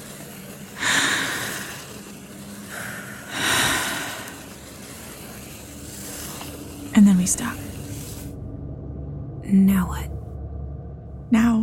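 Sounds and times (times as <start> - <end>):
deep breaths taken with eyes closed: 0.7 - 5.1
speech: 7.0 - 7.7, 9.5 - 10.2, 11.3 - 11.6.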